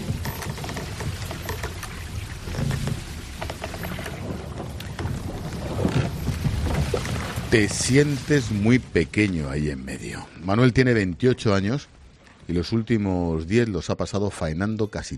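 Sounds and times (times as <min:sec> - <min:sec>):
waves of a calm sea at night splashing against a boat's bow: 0:00.0 - 0:10.2
speech: 0:07.5 - 0:11.9, 0:12.5 - 0:15.1.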